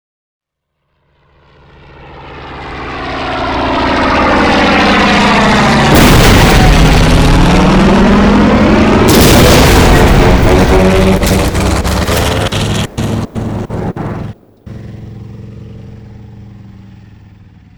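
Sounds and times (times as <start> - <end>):
plane crash: 3.8 - 17.5.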